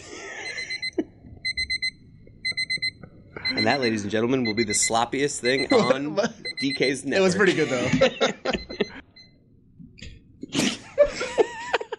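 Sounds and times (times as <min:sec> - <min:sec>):
laughter: 0:00.0 - 0:01.3, 0:05.4 - 0:09.0, 0:10.5 - 0:11.9
egg timer ringing with electronic beeps: 0:00.4 - 0:07.7, 0:08.5 - 0:09.4
speech: 0:03.5 - 0:08.6.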